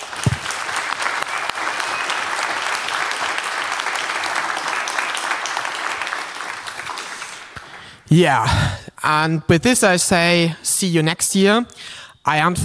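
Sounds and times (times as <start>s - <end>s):
sustained applause from a sizable audience: 0.0s - 8.0s
speech: 8.1s - 12.6s.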